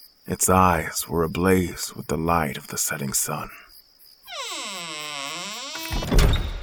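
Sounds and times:
speech: 0:00.3 - 0:03.6
deep booming thud of a heavy door swinging shut: 0:04.3 - 0:06.6
long groaning hinge creak of a heavy door: 0:04.3 - 0:06.6.

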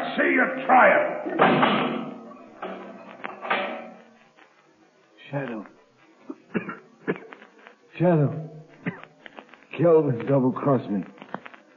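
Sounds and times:
speech: 0:00.2 - 0:01.9, 0:05.3 - 0:05.8, 0:08.0 - 0:08.4, 0:09.8 - 0:11.2
heavy metal door slamming shut: 0:01.3 - 0:02.2.

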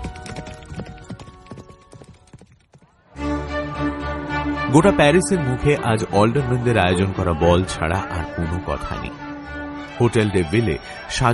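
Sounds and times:
horse galloping at full speed: 0:00.0 - 0:03.2
loud music: 0:03.2 - 0:11.3
speech: 0:04.7 - 0:09.2, 0:10.0 - 0:11.3.

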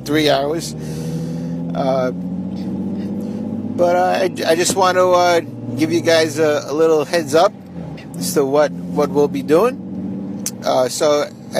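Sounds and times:
car engine drone from inside a car driving in heavy traffic: 0:00.0 - 0:11.5
speech: 0:00.1 - 0:01.1, 0:01.8 - 0:02.7, 0:03.8 - 0:07.6, 0:08.2 - 0:09.8, 0:10.6 - 0:11.5.

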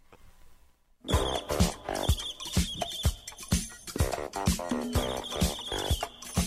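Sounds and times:
loud blaring trombone blasts: 0:01.1 - 0:03.0, 0:04.0 - 0:06.4
steady percussion: 0:01.1 - 0:06.4
upbeat song: 0:01.1 - 0:06.4.

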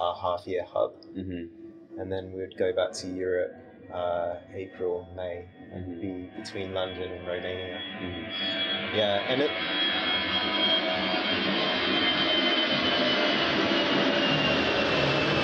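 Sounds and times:
speech: 0:00.0 - 0:10.7
low-flying airplane roaring overhead: 0:05.5 - 0:15.4.

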